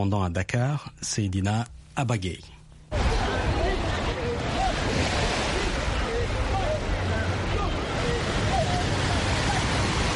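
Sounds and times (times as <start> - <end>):
speech: 0.0 - 3.0
beach surf roar: 2.9 - 10.1
people in the water calling: 2.9 - 10.1
voices of people in the water: 2.9 - 10.1.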